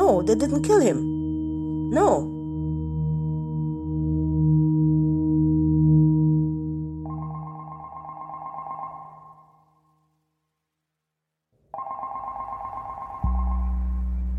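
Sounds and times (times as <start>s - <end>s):
speech: 0.1s - 1.1s, 1.9s - 2.3s
low droning tone: 1.0s - 7.2s, 13.2s - 14.3s
telephone at an embassy in Washington, D.C. ringing: 7.1s - 9.8s, 11.8s - 13.7s.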